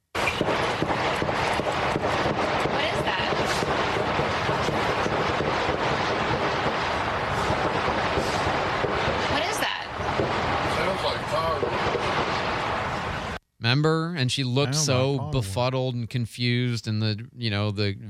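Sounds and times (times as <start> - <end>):
pistol gunfire barrage at the White House: 0.2 - 12.9
speech: 13.8 - 18.0
indistinct voices: 14.3 - 15.9.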